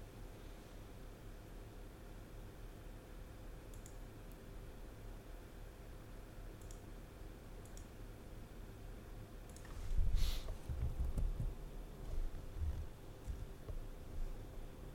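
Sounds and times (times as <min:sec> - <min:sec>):
steady low hiss: 0:00.0 - 0:14.9
soft computer mouse clicks: 0:03.7 - 0:04.4, 0:06.6 - 0:06.9, 0:07.6 - 0:08.0, 0:09.5 - 0:09.8.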